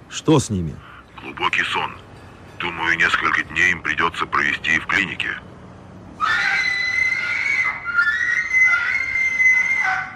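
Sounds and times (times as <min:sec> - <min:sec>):
speech: 0:00.1 - 0:02.0, 0:02.6 - 0:05.5
shrill desperate scream: 0:06.2 - 0:10.1.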